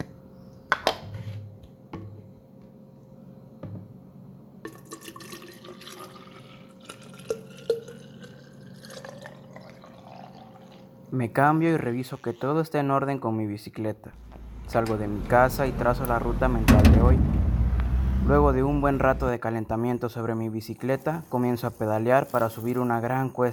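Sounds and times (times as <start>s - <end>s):
faint steady hum: 0.0s - 22.7s
water trickling and splashing into water bottles: 4.7s - 10.9s
speech: 11.1s - 17.4s, 18.2s - 23.5s.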